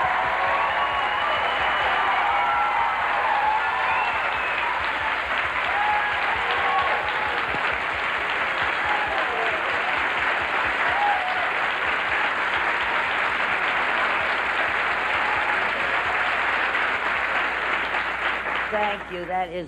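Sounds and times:
faint cheers and whoops: 0.0s - 7.8s, 8.5s - 10.1s, 10.7s - 13.0s, 14.9s - 16.6s
large college audience applauding a guest of honor: 0.0s - 19.6s
speech: 19.2s - 19.6s.

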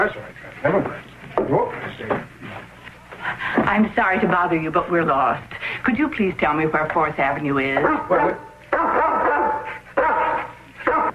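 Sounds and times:
speech: 0.0s - 2.7s, 3.4s - 9.1s
pet dog barking: 7.8s - 11.1s.

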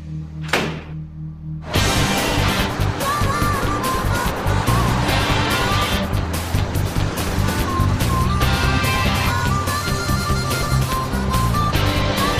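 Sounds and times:
low rumbling: 0.0s - 12.3s
door shutting with a solid thunk: 0.4s - 1.0s
loud dense roar: 1.6s - 9.4s.

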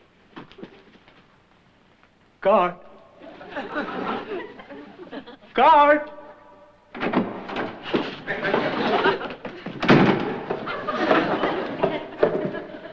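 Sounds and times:
speech: 2.4s - 2.9s, 5.6s - 6.2s
laughter: 3.2s - 5.6s, 8.2s - 12.9s
heavy door crashing down with a loud thud: 6.9s - 8.9s, 9.7s - 12.7s
bangs: 6.9s - 9.0s, 9.8s - 12.7s.

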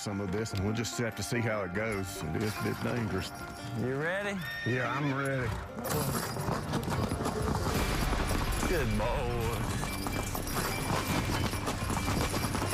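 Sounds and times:
speech: 0.0s - 7.2s, 8.7s - 9.9s
hooves of horses pulling a truck clip-clopping: 0.2s - 12.7s
dense continuous noise: 6.4s - 12.7s.

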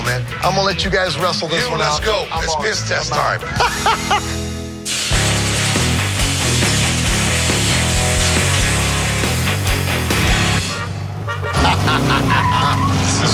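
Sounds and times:
speech: 0.2s - 5.0s
laughter: 3.4s - 4.4s, 11.3s - 13.3s
Meyers dune buggy engine droning and revving while driving on a road: 5.2s - 13.3s.

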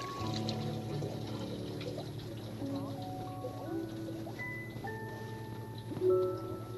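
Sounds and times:
water running from a spigot into a house sink: 0.0s - 6.7s.

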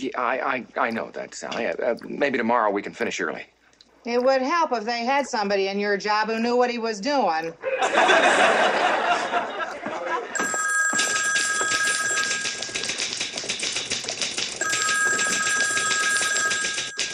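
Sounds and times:
speech: 0.0s - 9.6s
laughter: 7.6s - 10.4s
telephone bell ringing: 10.4s - 17.1s
typewriter keys clattering in an office: 11.0s - 17.1s.

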